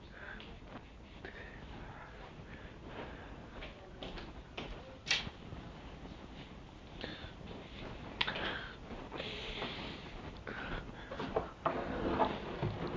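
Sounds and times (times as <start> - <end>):
rustling and shuffling movement: 0.0 - 12.9
soft knocks: 12.6 - 12.9.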